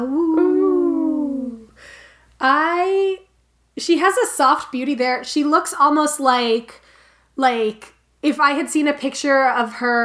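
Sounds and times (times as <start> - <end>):
person imitating a wolf howl: 0.0 - 1.6
speech: 2.4 - 10.0.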